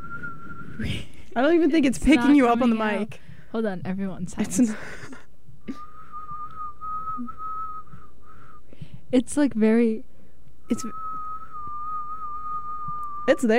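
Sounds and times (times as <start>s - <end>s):
thin steady whistle held on one pitch: 0.0s - 0.9s, 5.6s - 8.9s, 10.6s - 13.5s
speech: 0.8s - 5.8s, 9.1s - 10.1s, 10.7s - 11.0s, 13.3s - 13.5s.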